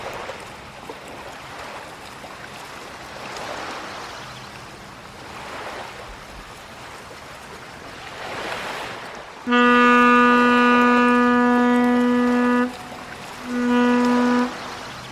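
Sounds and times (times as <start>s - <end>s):
waves washing: 0.0s - 15.0s
large cargo ship's deep brassy horn blasts: 9.4s - 15.0s.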